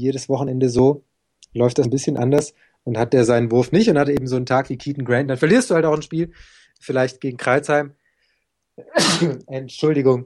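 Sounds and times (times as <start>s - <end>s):
speech: 0.0s - 8.0s, 8.8s - 10.2s
person sneezing: 8.8s - 9.4s.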